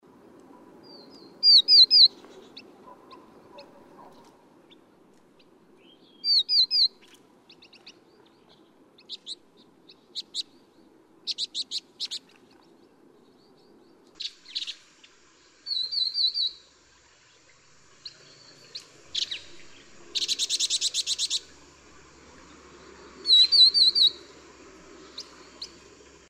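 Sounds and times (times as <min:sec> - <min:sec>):
vinous-throated parrotbill, resident bird: 0:00.5 - 0:04.8, 0:05.4 - 0:12.6, 0:14.1 - 0:16.7, 0:18.0 - 0:21.6, 0:23.2 - 0:24.4.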